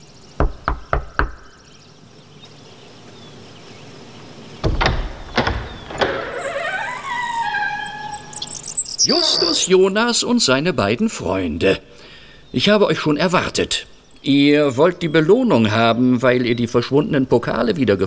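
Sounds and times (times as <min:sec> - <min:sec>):
firm knocks on a door: 0:00.4 - 0:01.4, 0:04.6 - 0:06.2
door handle rattling: 0:04.6 - 0:08.7
door creaking open: 0:04.6 - 0:09.7
speech: 0:09.0 - 0:18.0.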